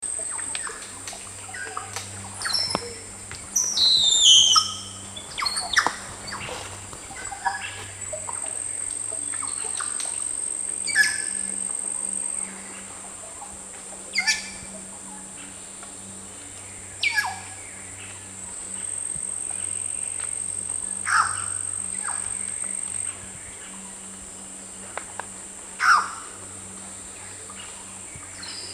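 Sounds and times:
band-tailed cacique calling: 0.2s - 15.6s, 16.7s - 24.1s, 25.8s - 26.5s.

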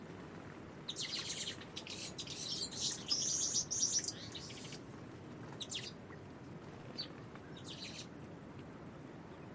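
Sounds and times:
low steady background hiss: 0.0s - 9.5s
orange weaver chirping calls: 0.9s - 4.9s, 5.6s - 6.0s, 7.0s - 8.1s.

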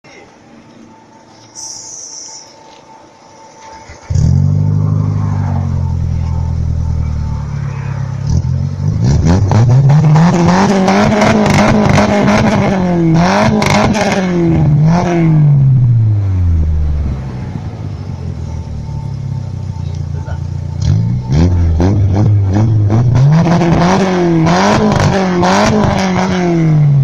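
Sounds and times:
engine exhaust: 3.6s - 27.0s.

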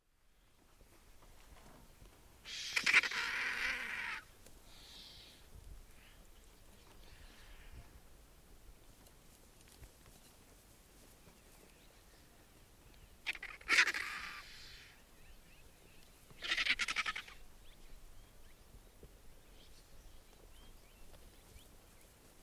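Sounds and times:
Indian vulture: 2.4s - 8.0s, 13.2s - 15.1s, 16.2s - 17.5s.

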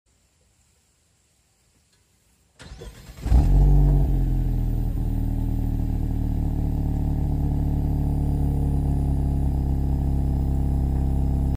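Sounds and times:
Talisman car: 2.6s - 11.5s.

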